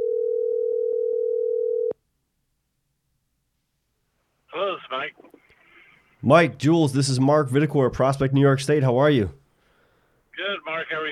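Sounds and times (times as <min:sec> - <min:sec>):
loud telephone dial tone while placing call: 0:00.0 - 0:02.0
speech: 0:04.8 - 0:05.6, 0:06.2 - 0:09.4.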